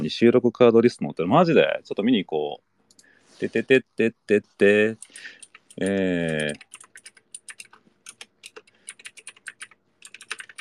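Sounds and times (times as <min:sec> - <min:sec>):
speech: 0:00.1 - 0:02.7, 0:03.4 - 0:06.7
fingers typing a web search on a computer keyboard: 0:05.0 - 0:10.6.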